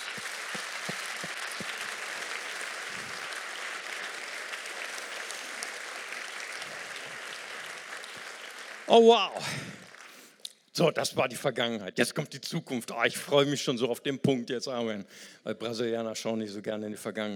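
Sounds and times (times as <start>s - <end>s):
large audience applauding: 0.0s - 10.3s
speech: 8.9s - 9.7s, 10.8s - 17.3s.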